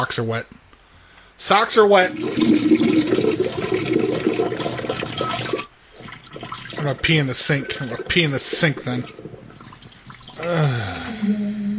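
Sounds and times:
speech: 0.0s - 0.6s, 1.4s - 3.4s, 6.8s - 9.2s
broken motel toilet flushing: 2.0s - 10.4s.

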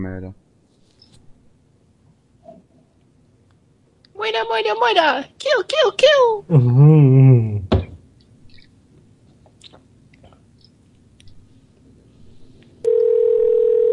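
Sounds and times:
speech: 0.0s - 0.4s, 4.2s - 7.3s
electronic telephone ring tone: 12.9s - 13.9s.

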